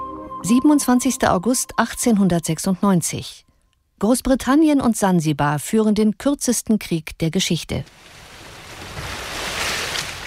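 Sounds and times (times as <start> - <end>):
speech: 0.4 - 8.2
ocean waves lapping at a harbor: 7.9 - 10.2.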